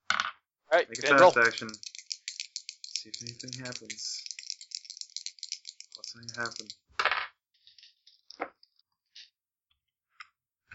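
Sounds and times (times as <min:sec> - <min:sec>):
speech: 0:00.8 - 0:01.9, 0:03.0 - 0:04.3, 0:06.1 - 0:06.8
dice clattering across a hard table: 0:00.9 - 0:08.8.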